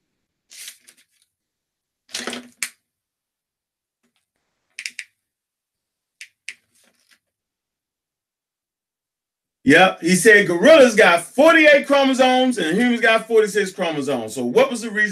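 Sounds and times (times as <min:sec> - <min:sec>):
crinkly rustling and crisp shuffling of paper: 0:00.5 - 0:01.3, 0:06.6 - 0:07.3
speech: 0:09.7 - 0:15.0.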